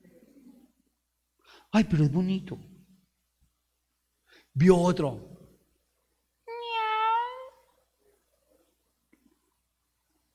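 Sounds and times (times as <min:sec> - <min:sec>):
speech: 0:01.7 - 0:02.7, 0:04.6 - 0:05.3
drawn-out cat meow: 0:06.5 - 0:07.7.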